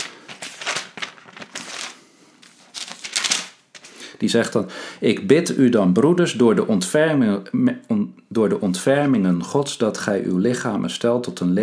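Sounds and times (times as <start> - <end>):
thin Bible pages rustling and flipping: 0.0 - 4.1
speech: 4.2 - 11.6.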